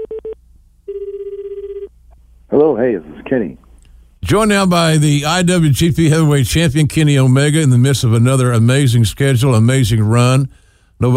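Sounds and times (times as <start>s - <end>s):
steady unbroken telephone ring tone: 0.0s - 1.9s
speech: 2.6s - 3.6s, 4.2s - 11.1s.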